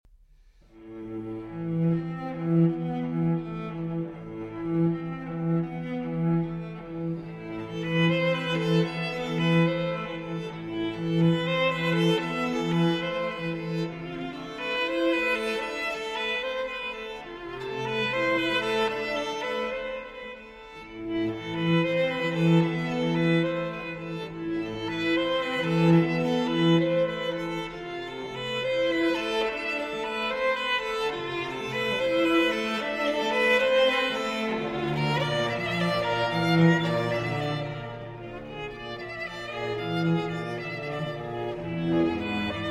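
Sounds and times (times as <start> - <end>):
cello: 0.4 - 42.6
violin: 0.4 - 42.6.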